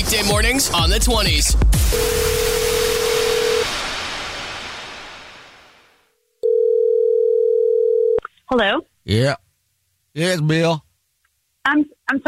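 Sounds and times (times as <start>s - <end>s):
speech: 0.1s - 2.7s, 8.5s - 9.4s, 10.1s - 10.8s, 11.6s - 12.2s
loud crash: 1.8s - 6.1s
telephone dial tone: 2.0s - 3.6s, 6.4s - 8.2s.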